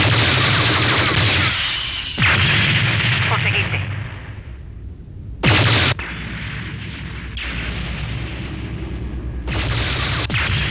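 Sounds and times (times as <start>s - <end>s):
weapon firing shots in a sustained barrage: 0.0s - 3.7s, 5.4s - 8.8s, 9.5s - 10.6s.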